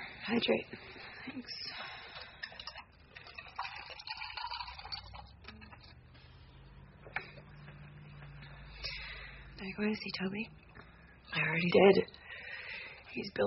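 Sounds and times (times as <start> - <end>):
speech: 0.3 - 2.0, 9.6 - 10.6, 11.4 - 12.2, 13.2 - 13.4
drink poured over ice cubes: 2.1 - 5.9.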